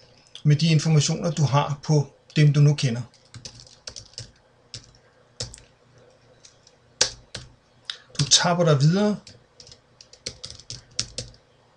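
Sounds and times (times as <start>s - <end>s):
speech: 0.4s - 3.2s, 8.4s - 9.3s
typing on a computer keyboard: 3.1s - 5.7s, 6.5s - 7.5s, 9.2s - 11.4s.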